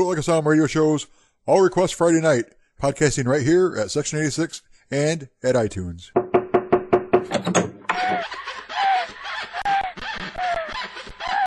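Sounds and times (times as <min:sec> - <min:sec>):
speech: 0:00.0 - 0:06.2
sharp knocks on a door: 0:06.2 - 0:08.2
laughter: 0:07.9 - 0:11.4.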